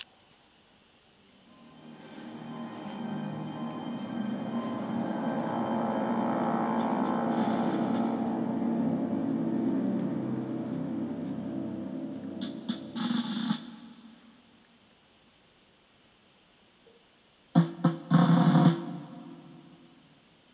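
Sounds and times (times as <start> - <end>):
drumroll: 2.1 - 14.3, 17.6 - 19.6.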